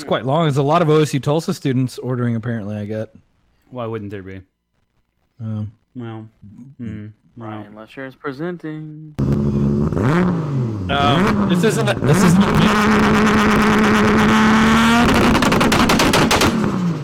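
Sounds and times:
speech: 0.0 - 4.5, 5.4 - 15.4
car engine revving on two-step launch control: 9.2 - 17.0
exhaust pops and crackles from two-step rev limiter: 12.0 - 17.0.

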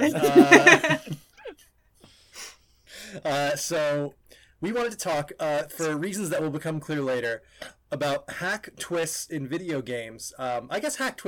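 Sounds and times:
speech: 0.0 - 1.2, 3.2 - 11.2
laughter: 0.0 - 1.4
exasperated heavy breathing with groaning exhale and wheezy breaths: 2.0 - 3.3.

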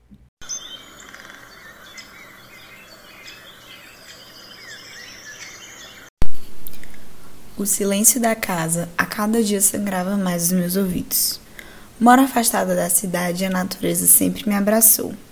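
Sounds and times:
birds chirping and trilling outdoors: 0.4 - 6.1
speech: 7.6 - 11.4, 12.0 - 15.3.

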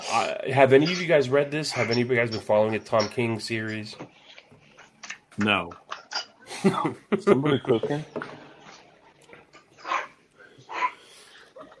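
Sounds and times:
speech: 0.1 - 4.2, 5.4 - 5.8, 6.6 - 8.3
dog barking: 9.8 - 11.0.

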